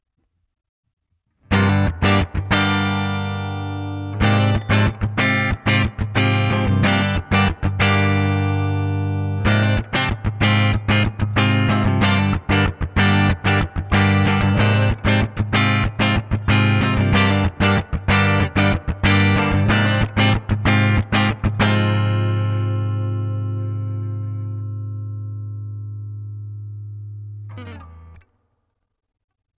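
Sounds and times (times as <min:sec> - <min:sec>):
clean rhythm guitar: 0:01.3 - 0:28.8.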